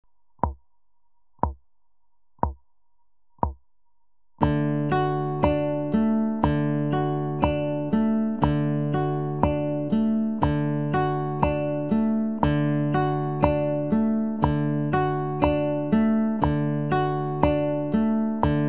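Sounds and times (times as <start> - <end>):
picking: 4.4 - 18.6.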